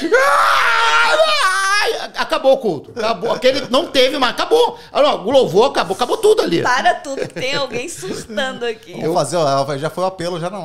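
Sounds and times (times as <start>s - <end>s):
person imitating loud wailing sobs: 0.0s - 2.0s, 7.0s - 8.9s
speech: 2.3s - 10.6s
laughter: 2.9s - 4.2s, 5.8s - 8.8s.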